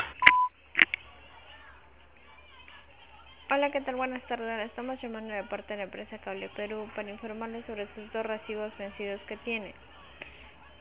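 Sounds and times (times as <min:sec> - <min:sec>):
voicemail system electronic beep: 0:00.1 - 0:00.5
speech: 0:03.5 - 0:09.9.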